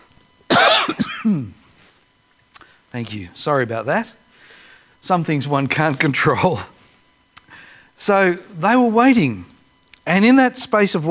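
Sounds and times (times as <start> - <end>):
person coughing: 0.5 - 1.6
rough clearing of the throat: 0.5 - 1.6
speech: 0.9 - 1.6, 2.9 - 4.2, 5.0 - 6.7, 8.0 - 9.5, 10.1 - 11.0.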